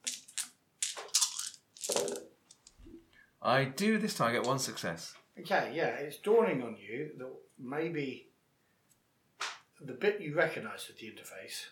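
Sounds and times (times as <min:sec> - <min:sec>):
handful of hard plastic dice rattling and clattering: 0:00.0 - 0:02.8
speech: 0:03.4 - 0:08.3, 0:09.8 - 0:11.6.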